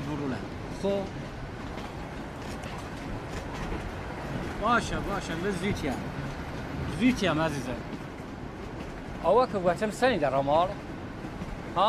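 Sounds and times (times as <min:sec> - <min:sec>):
train rumbling on rails with clatter and hiss: 0:00.0 - 0:11.8
speech: 0:00.8 - 0:01.2, 0:04.6 - 0:06.2, 0:07.0 - 0:07.9, 0:09.2 - 0:10.8.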